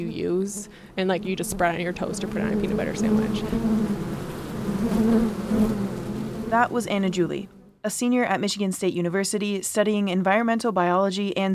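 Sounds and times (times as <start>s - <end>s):
speech: 0.0s - 4.2s, 4.8s - 5.9s, 6.5s - 11.5s
bees buzzing: 0.0s - 7.8s.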